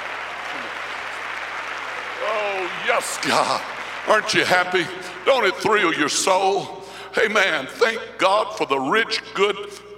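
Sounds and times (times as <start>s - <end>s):
voice rising over applause: 0.0s - 4.1s
audience clapping hands: 0.0s - 5.8s
speech: 2.3s - 9.9s.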